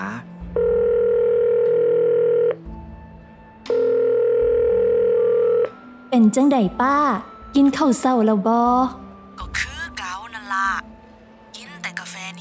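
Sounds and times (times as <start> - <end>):
telephone ringback tone as a call is placed: 0.6 - 2.6, 3.7 - 5.7
speech: 6.2 - 9.5.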